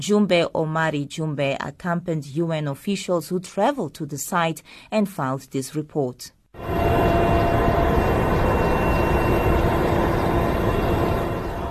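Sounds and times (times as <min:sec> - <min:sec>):
speech: 0:00.0 - 0:07.2
helicopter engine and rotor roar heard from inside the cabin in flight: 0:06.6 - 0:11.6.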